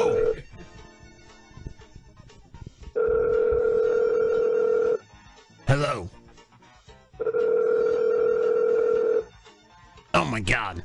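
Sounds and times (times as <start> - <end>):
buzzy phone ringback tone on the caller's end: 0.0 - 1.8, 3.0 - 5.1, 7.2 - 9.4
speech: 5.7 - 6.2, 10.2 - 10.8.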